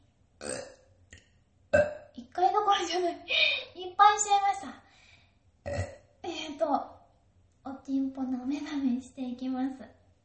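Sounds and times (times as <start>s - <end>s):
loud drawn-out burp in a bathroom: 0.4s - 0.9s, 1.8s - 2.1s, 5.6s - 6.1s
speech: 1.7s - 4.8s, 6.6s - 7.0s, 7.9s - 10.0s.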